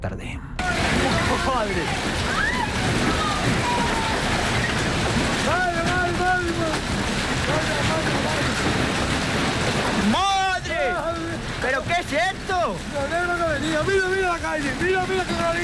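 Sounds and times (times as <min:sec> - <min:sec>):
speech: 0:00.0 - 0:00.8, 0:01.4 - 0:03.8
agitated voices crying out and exclaiming: 0:00.6 - 0:06.9
large hailstones falling during a storm: 0:00.6 - 0:15.6.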